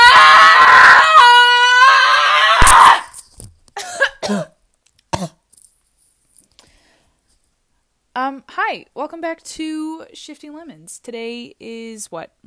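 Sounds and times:
person screaming: 0:00.0 - 0:03.2
breathy gasps: 0:06.6 - 0:07.2
speech: 0:08.7 - 0:12.4.

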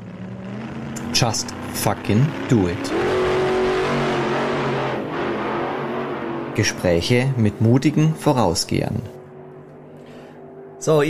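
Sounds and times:
dragster engine roaring down the quarter mile: 0:00.0 - 0:11.0
speech: 0:01.2 - 0:03.2, 0:06.6 - 0:09.2, 0:10.8 - 0:11.0.

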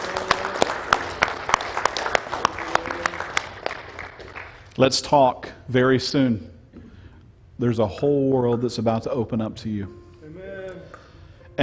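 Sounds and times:
audience applause: 0:00.0 - 0:04.7
sharp loud claps: 0:00.0 - 0:04.7
speech: 0:04.8 - 0:06.5, 0:07.6 - 0:10.0.

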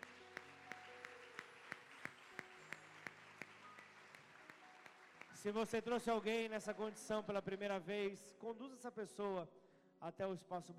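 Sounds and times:
large church audience applauding: 0:00.0 - 0:07.6
speech: 0:05.4 - 0:10.7.

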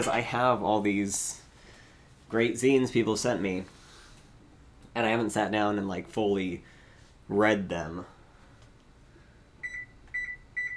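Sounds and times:
speech: 0:00.0 - 0:01.4, 0:02.3 - 0:03.8, 0:05.0 - 0:06.7, 0:07.3 - 0:08.1
electronic timer beeps from setting a timer for cooking eggs: 0:09.6 - 0:10.7.

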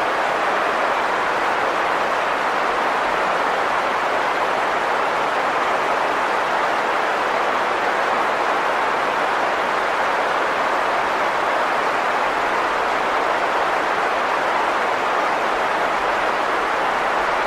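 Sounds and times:
white noise hiss: 0:00.0 - 0:17.4.

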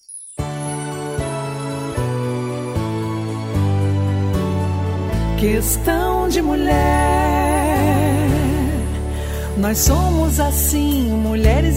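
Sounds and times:
song's instrumental intro with sustained bright chords: 0:00.4 - 0:11.7
speech: 0:05.4 - 0:07.4, 0:09.6 - 0:11.7.

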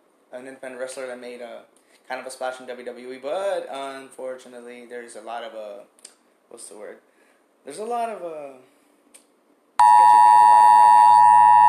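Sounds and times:
speech: 0:00.3 - 0:08.7
phone Amber Alert emergency alert tone: 0:09.8 - 0:11.6.

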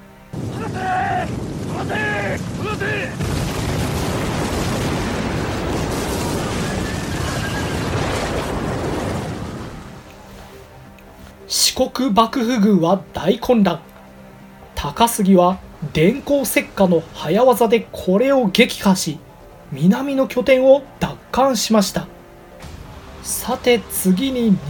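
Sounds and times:
warship naval cannon fire explosions: 0:00.3 - 0:10.1
speech: 0:11.9 - 0:13.9, 0:14.8 - 0:22.1, 0:23.2 - 0:24.6.

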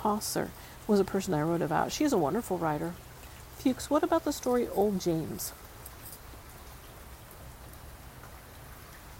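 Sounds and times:
speech: 0:00.0 - 0:05.6
heavy rain: 0:00.0 - 0:09.1.

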